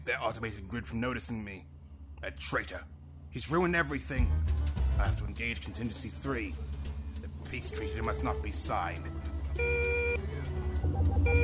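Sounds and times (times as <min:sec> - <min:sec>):
speech: 0:00.0 - 0:06.8, 0:07.5 - 0:09.8
proximity alarm beeping: 0:09.6 - 0:11.4.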